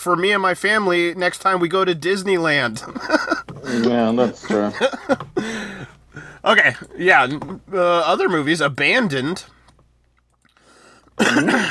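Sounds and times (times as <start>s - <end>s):
speech: 0.0s - 9.6s, 11.2s - 11.6s
laughter: 2.8s - 6.0s
raspy throaty cough: 11.2s - 11.6s.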